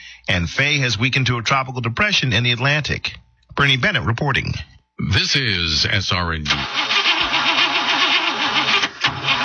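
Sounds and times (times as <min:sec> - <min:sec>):
speech: 0:00.3 - 0:07.0
car engine cranking but failing to start: 0:06.5 - 0:09.4.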